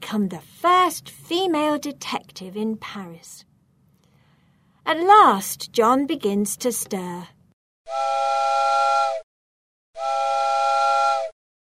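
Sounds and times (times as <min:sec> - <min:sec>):
speech: 0:00.1 - 0:03.5, 0:04.8 - 0:08.2
locomotive steam whistle blasts with a breathy hiss: 0:07.9 - 0:09.2, 0:10.0 - 0:11.4.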